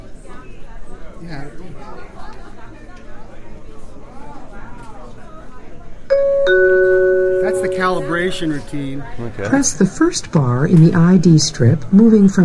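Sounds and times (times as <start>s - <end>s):
murmuring crowd chatter: 0.0s - 12.4s
speech: 1.2s - 2.4s, 7.9s - 12.4s
device chime after pressing calibration dot: 6.1s - 8.7s.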